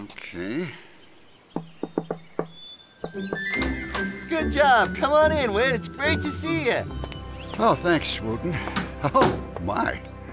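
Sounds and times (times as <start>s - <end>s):
faint birdlike chirps and tones: 0.0s - 8.6s
speech: 0.1s - 0.8s, 3.1s - 10.1s
secret knock on a door: 1.6s - 3.2s.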